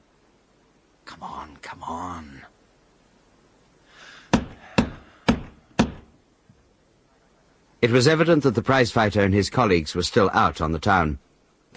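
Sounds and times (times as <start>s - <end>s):
speech: 1.2s - 2.6s, 7.8s - 11.7s
knocks on the oak door of a house: 4.3s - 6.1s.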